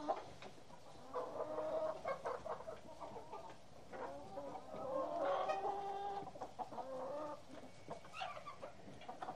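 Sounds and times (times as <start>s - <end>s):
several hens clucking: 0.0s - 9.3s.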